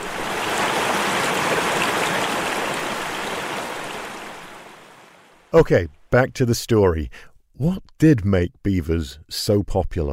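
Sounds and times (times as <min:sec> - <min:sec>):
mountain creek water rushing: 0:00.0 - 0:05.6
speech: 0:05.5 - 0:10.1.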